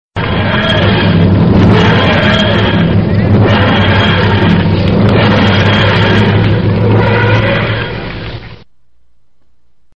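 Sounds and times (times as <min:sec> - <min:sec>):
bass: 0:00.2 - 0:09.9.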